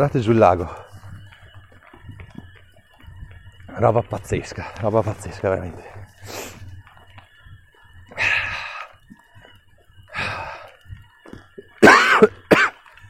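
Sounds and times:
speech: 0.0s - 0.8s, 3.8s - 6.6s
person coughing: 11.8s - 12.8s.

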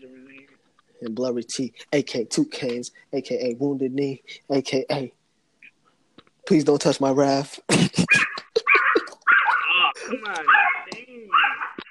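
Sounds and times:
speech: 1.0s - 5.2s, 6.5s - 8.3s
dog whimpering, yipping and barking: 8.1s - 9.7s, 10.4s - 11.8s.

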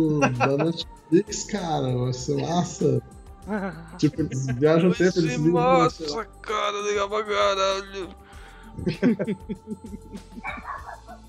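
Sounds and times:
laughter: 0.0s - 0.8s, 2.2s - 2.8s, 4.0s - 6.1s, 8.8s - 11.2s
speech: 0.0s - 8.2s, 8.8s - 10.9s
small dog whimpering yips: 10.4s - 11.2s
small dog yapping: 10.4s - 11.2s.

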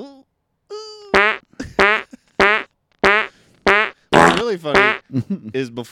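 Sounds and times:
comedic fart sound effect: 1.2s - 5.0s
speech: 4.4s - 5.8s.

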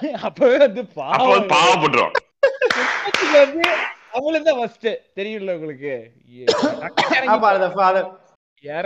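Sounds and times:
speech: 0.0s - 8.8s
person coughing: 6.5s - 7.4s.

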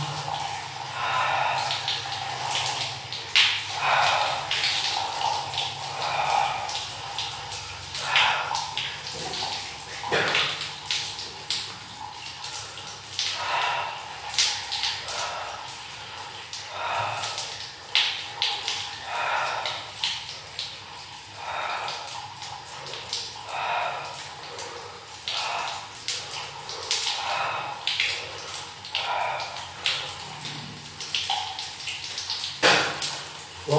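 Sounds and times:
cold water sloshing around a person standing in it: 0.0s - 33.6s.

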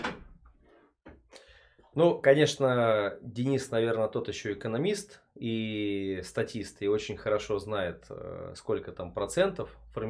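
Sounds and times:
door knocking and rattling as it swings: 0.0s - 0.4s
speech: 2.0s - 10.0s.

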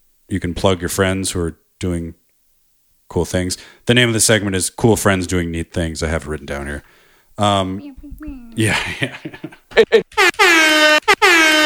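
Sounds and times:
speech: 0.3s - 2.2s, 3.1s - 11.1s
laughter: 8.6s - 10.1s
air horn sound effect blasts: 10.1s - 11.6s.

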